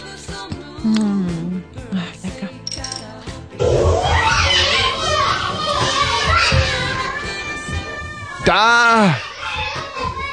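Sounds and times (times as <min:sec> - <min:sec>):
speech: 0:00.8 - 0:02.0, 0:08.5 - 0:09.3
crowd of small children playing and chattering: 0:03.8 - 0:10.3.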